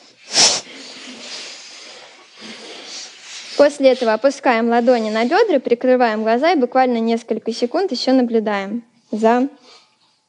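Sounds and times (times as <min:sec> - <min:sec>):
forceful exhalation after holding the breath: 0:00.0 - 0:04.2
soft breathing: 0:00.0 - 0:05.5
speech: 0:03.6 - 0:09.7.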